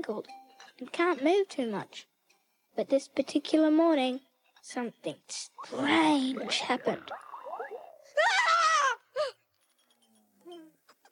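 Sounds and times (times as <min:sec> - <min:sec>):
speech: 0:00.0 - 0:02.1, 0:02.8 - 0:07.2
woman screaming in fright: 0:08.2 - 0:09.3.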